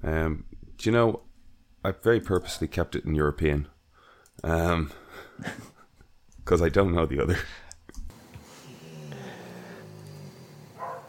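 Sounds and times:
speech: 0.0s - 3.8s, 4.4s - 5.7s, 6.5s - 7.6s
dog growling: 8.3s - 11.0s.

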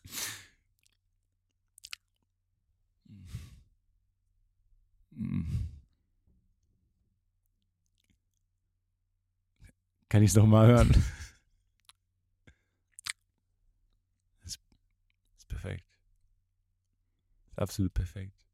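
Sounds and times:
wet mouth smacks and clicks close to a person's ear: 1.7s - 2.3s, 12.9s - 13.2s
speech: 10.1s - 11.2s, 17.6s - 18.4s.

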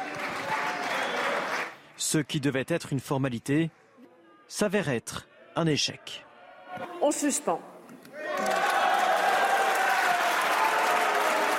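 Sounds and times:
large crowd applauding and cheering in a big hall: 0.0s - 1.8s, 8.2s - 11.5s
speech: 2.0s - 3.8s, 4.5s - 7.7s.

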